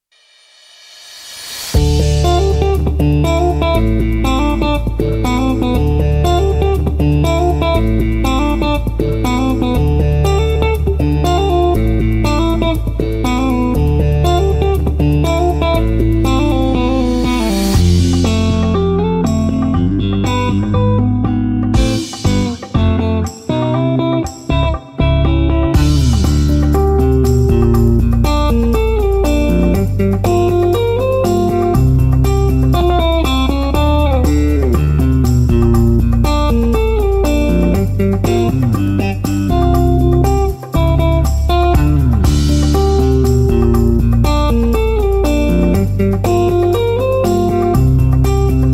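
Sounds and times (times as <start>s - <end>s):
disco dance music with bass: 1.8s - 48.7s.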